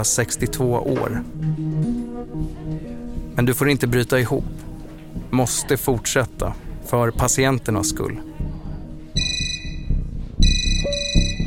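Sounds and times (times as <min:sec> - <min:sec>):
speech: 0:00.0 - 0:04.7, 0:05.3 - 0:08.3
alarm phone ringing with shrill electronic tone: 0:09.2 - 0:11.4.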